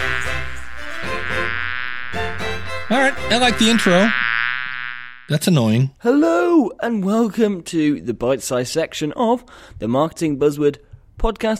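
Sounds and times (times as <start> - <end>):
buzzing bees sound effect: 0.0 - 5.3
speech: 2.9 - 4.2, 5.3 - 11.5.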